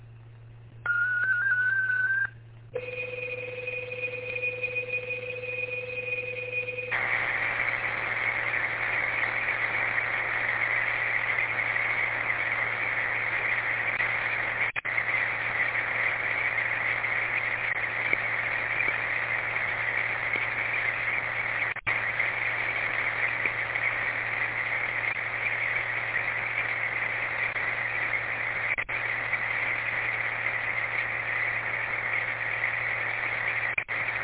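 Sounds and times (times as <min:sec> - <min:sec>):
low hum: 0:00.0 - 0:34.2
continuous buzzing data stream over amateur radio: 0:00.8 - 0:34.2
digital data tones over amateur radio: 0:00.9 - 0:07.0.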